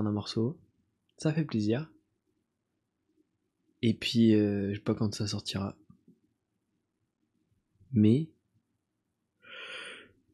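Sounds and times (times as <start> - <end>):
speech: 0.0 - 0.6, 1.2 - 1.9, 3.8 - 5.8, 7.9 - 8.4
long breathy yawn: 9.5 - 10.1.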